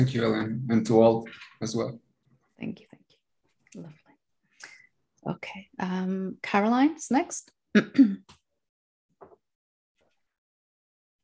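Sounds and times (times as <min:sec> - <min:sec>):
speech: 0:00.0 - 0:02.0, 0:02.6 - 0:03.0, 0:03.7 - 0:04.0, 0:05.2 - 0:08.4
person coughing in a Zoom meeting: 0:07.8 - 0:08.3
soft throat-clearing rasp: 0:07.8 - 0:08.3.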